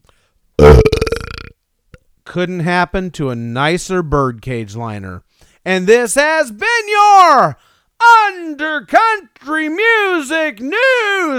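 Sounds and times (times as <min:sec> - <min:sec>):
loud deep guttural belch: 0:00.6 - 0:01.6
speech: 0:02.3 - 0:11.3.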